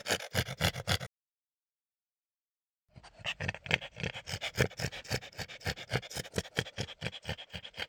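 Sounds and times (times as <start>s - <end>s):
French Bulldog gasping: 0.0s - 1.1s, 2.9s - 7.8s.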